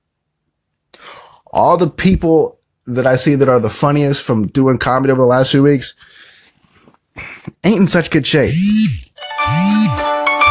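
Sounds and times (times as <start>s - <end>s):
speech: 1.6s - 6.3s, 7.2s - 10.1s
electronic mobile phone ringtone with synthetic melody: 9.2s - 10.4s.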